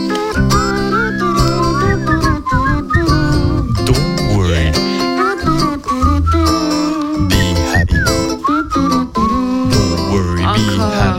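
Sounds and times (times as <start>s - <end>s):
several people whistling a cheerful melody together: 0.0s - 3.9s, 5.0s - 10.0s
steady instrumental backing: 0.0s - 11.1s.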